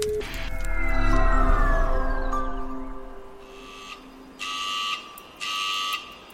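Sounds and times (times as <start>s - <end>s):
sharp fire station alarm blasts: 0.1s - 6.0s
fire station alarm wailing tone: 0.2s - 5.1s.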